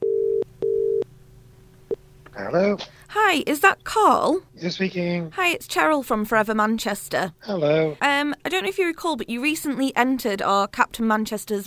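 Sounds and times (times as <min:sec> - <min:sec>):
telephone line tone while dialing a call: 0:00.0 - 0:01.0
speech: 0:02.4 - 0:11.6.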